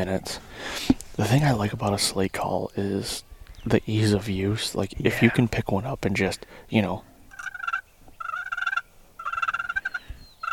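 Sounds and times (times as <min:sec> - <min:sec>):
speech: 0:00.0 - 0:07.1
wild turkey gobbling: 0:05.1 - 0:05.5, 0:07.3 - 0:10.5.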